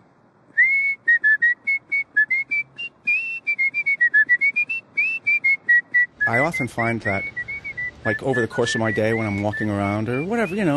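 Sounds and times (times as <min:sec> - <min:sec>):
man whistling a lively tune: 0:00.5 - 0:10.7
speech: 0:06.3 - 0:07.4, 0:08.0 - 0:10.7.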